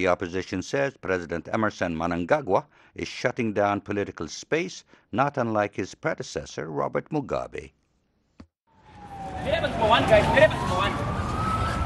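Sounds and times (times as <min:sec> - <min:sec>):
speech: 0:00.0 - 0:07.8, 0:09.4 - 0:11.0
police siren wailing: 0:08.7 - 0:11.8
traffic: 0:08.7 - 0:11.8.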